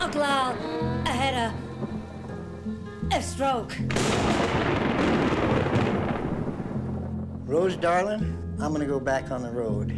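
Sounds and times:
speech: 0.1 - 2.0, 3.1 - 6.1, 7.5 - 9.9
deep rumble of thunder from a lightning storm: 3.9 - 8.2.

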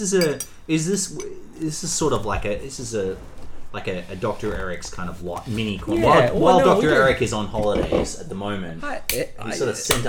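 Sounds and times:
spoon scraping and clinking against a glass while scooping sorbet: 0.0 - 1.7
speech: 0.0 - 10.0.

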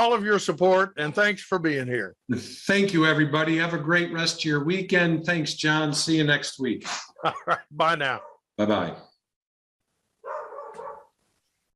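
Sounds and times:
speech: 0.0 - 9.1
laughter: 6.8 - 8.2
dog barking: 8.1 - 8.4, 10.2 - 11.2.

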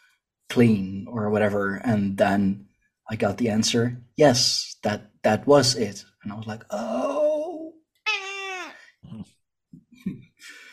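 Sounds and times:
speech: 0.5 - 7.2
frightened cat meowing: 8.1 - 8.8.

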